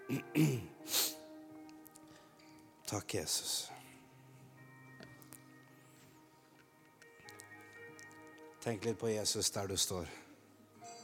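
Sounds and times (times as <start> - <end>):
person clearing throat from a tickle in the throat: 0.0 - 0.8
faint steady drone: 0.0 - 11.0
speech: 0.1 - 1.0, 2.9 - 3.8, 8.6 - 10.3.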